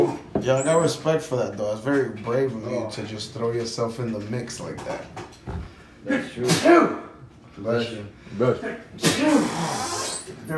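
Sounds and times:
speech: 0.4s - 10.5s
sneeze: 6.4s - 7.0s, 9.0s - 10.4s.

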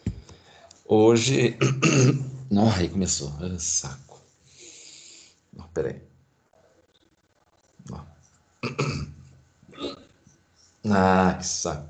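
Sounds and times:
speech: 0.9s - 4.1s, 5.8s - 6.1s, 10.8s - 11.8s
person hiccuping: 1.6s - 2.4s, 8.6s - 10.1s.

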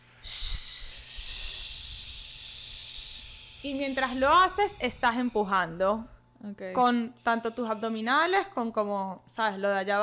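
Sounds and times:
long shh exhale as a breathing technique: 0.0s - 3.6s
speech: 3.6s - 10.0s.

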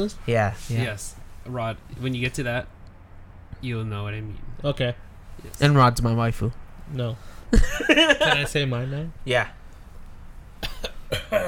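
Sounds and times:
speech: 0.0s - 2.8s, 3.6s - 9.6s, 10.6s - 11.4s
laughter: 7.5s - 8.9s
person coughing harshly: 10.6s - 11.4s.

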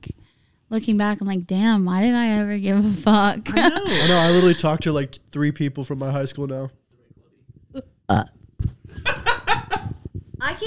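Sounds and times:
speech: 0.0s - 6.8s, 7.7s - 8.4s, 10.4s - 10.6s
person burping: 7.7s - 8.4s.

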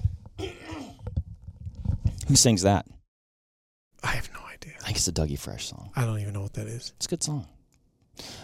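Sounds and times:
person clearing throat: 0.4s - 1.0s
speech: 2.3s - 3.0s, 4.9s - 7.6s.

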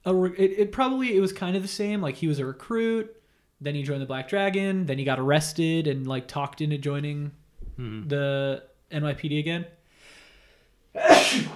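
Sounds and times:
speech: 0.1s - 9.8s, 10.9s - 11.5s
loud sneeze: 11.0s - 11.5s.

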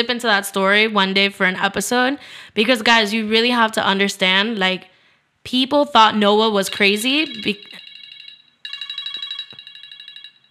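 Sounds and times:
speech: 0.0s - 7.8s
mobile phone ringtone with bright electronic melody of pulsing tones: 6.6s - 10.4s.

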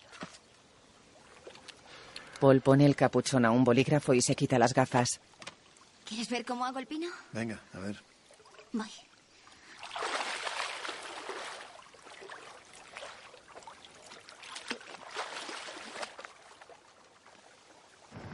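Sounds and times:
small splashes: 0.0s - 2.4s, 8.1s - 18.1s
water sloshing and trickling as a boat leaves a village harbour: 0.0s - 4.2s, 4.9s - 6.8s, 7.8s - 18.2s
speech: 2.4s - 5.3s, 6.1s - 8.1s, 8.7s - 9.1s.

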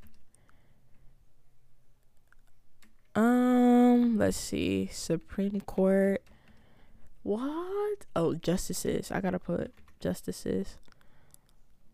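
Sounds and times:
typing on a computer keyboard: 0.0s - 0.6s, 2.1s - 3.2s, 5.4s - 6.7s, 9.3s - 11.6s
low hum: 0.0s - 11.9s
speech: 4.2s - 6.3s, 7.2s - 10.9s.

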